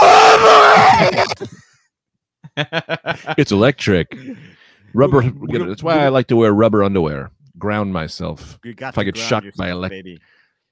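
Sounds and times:
man imitating a death scream: 0.0 - 1.4
speech: 1.2 - 1.6, 2.6 - 10.7
laughter: 2.4 - 4.4.

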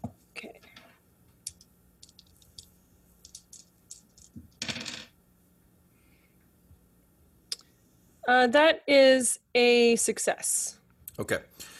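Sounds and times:
dice rolled across a tabletop for a listen check in a game: 1.5 - 5.1
speech: 8.3 - 11.7.

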